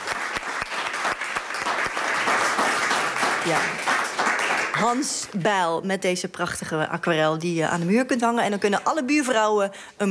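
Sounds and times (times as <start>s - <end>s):
audience applauding the winner of a yearly prize: 0.0s - 5.2s
speech: 3.4s - 3.9s, 4.8s - 10.1s.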